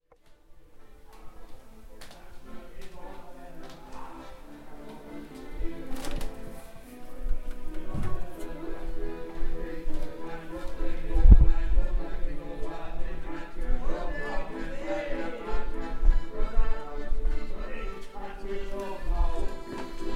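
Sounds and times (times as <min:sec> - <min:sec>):
accordion at Margaretenplatz: 0:00.2 - 0:20.1.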